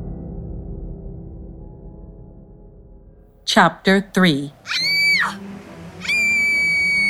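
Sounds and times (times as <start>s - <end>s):
speech: 3.5s - 5.4s
girl yelling while falling through the air: 4.3s - 5.4s, 6.1s - 7.0s.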